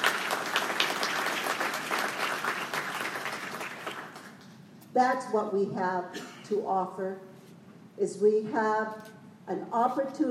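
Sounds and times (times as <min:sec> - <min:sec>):
audience applause for a choir: 0:00.0 - 0:04.4
speech: 0:05.0 - 0:07.3, 0:08.0 - 0:10.2.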